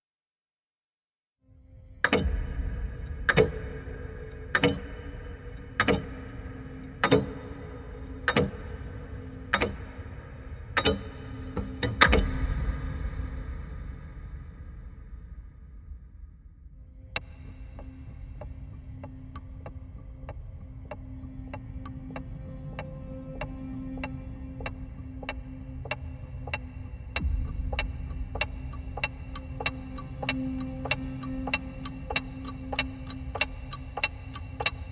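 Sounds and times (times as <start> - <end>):
trailer pulsing clock ticks: 2.0 - 12.9, 17.1 - 34.9.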